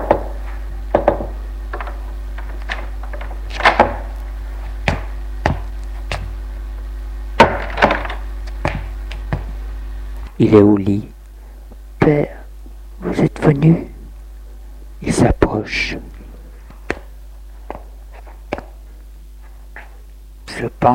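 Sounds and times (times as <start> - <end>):
knocking on a wooden bedroom door: 0.0 - 1.4
constant low hum: 0.0 - 20.9
speech: 10.4 - 11.1, 12.1 - 12.4, 13.1 - 13.9, 15.0 - 16.1.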